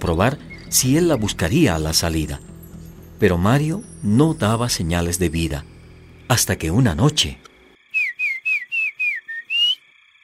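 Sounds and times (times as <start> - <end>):
speech: 0.0 - 2.5, 3.2 - 5.7, 6.3 - 7.5
person whistling a signal outside: 7.9 - 9.8.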